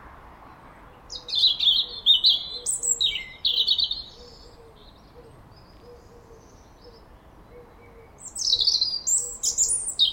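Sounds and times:
European robin Erithacus rubecula singing: 1.0s - 5.8s, 8.1s - 10.1s.

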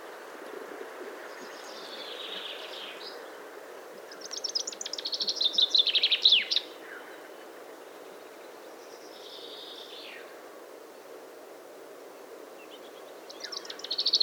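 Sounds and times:
Common chaffinch song: 1.2s - 10.3s, 12.6s - 14.2s.

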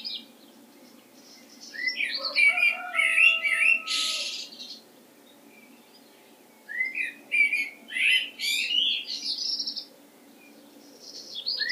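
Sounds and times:
common blackbird Turdus merula harsh noisy call: 1.4s - 4.8s, 6.7s - 9.9s.

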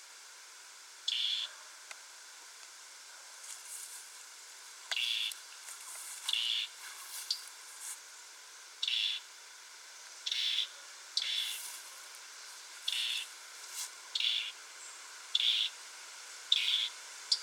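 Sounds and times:
background hiss: 0.0s - 17.4s
European robin Erithacus rubecula calls: 1.1s - 1.5s, 4.9s - 5.4s, 6.2s - 7.5s, 8.8s - 9.3s, 10.2s - 11.7s, 12.5s - 13.4s, 14.1s - 15.8s, 16.5s - 17.4s.

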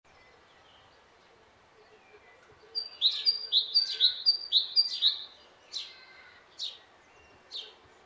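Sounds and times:
great tit Parus major singing ringing two-note phrases: 1.8s - 7.8s.

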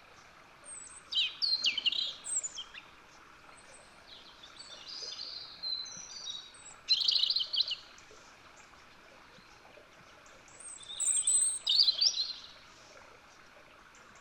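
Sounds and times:
European robin Erithacus rubecula singing: 0.7s - 2.9s, 4.1s - 7.8s, 10.6s - 12.5s.

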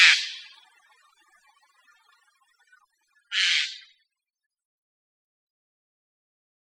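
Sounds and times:
Eurasian jay Garrulus glandarius rough grating screeches: 0.0s - 0.5s, 3.3s - 3.8s.

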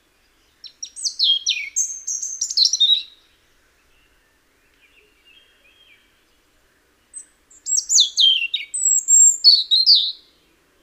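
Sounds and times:
European robin Erithacus rubecula singing: 0.0s - 10.8s.

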